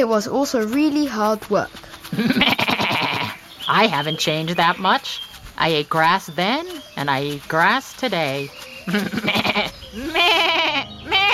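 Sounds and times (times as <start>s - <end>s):
speech: 0.0s - 2.7s, 3.7s - 10.3s
goat bleating: 2.1s - 3.5s, 8.9s - 11.3s.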